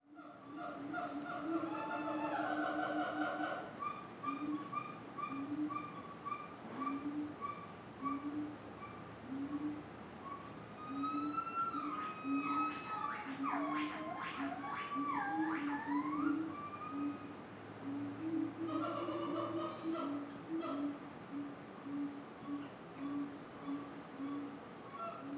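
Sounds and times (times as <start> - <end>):
monkeys in jungle: 0.0 - 25.3.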